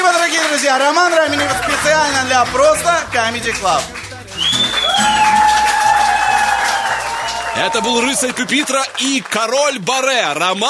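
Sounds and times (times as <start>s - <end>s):
large audience applause: 0.0s - 9.9s
speech: 0.7s - 4.0s, 7.6s - 10.6s
shrill whistles: 4.3s - 8.0s
whoops: 4.4s - 8.4s.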